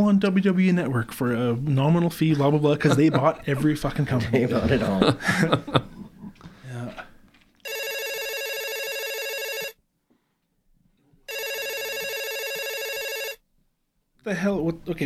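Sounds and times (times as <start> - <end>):
speech: 0.0 - 6.0, 14.3 - 15.0
laughter: 2.4 - 6.5
telephone ringing in long electronic bursts: 7.6 - 9.8, 11.3 - 13.4.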